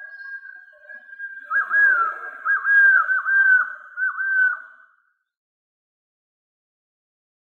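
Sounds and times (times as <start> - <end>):
golden-headed quetzal whistling slurred phrases: 0.0 - 4.8.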